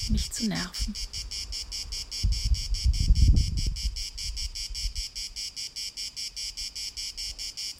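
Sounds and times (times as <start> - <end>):
low rumble of wind or handling noise: 0.0 - 5.4
crickets chirping: 0.0 - 7.7
speech: 0.1 - 1.5.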